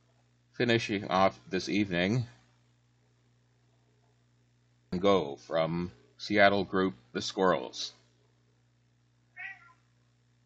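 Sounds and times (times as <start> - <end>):
low steady hum: 0.0 - 10.4
speech: 0.6 - 2.4, 4.9 - 8.0
cat meowing for food: 9.4 - 9.8.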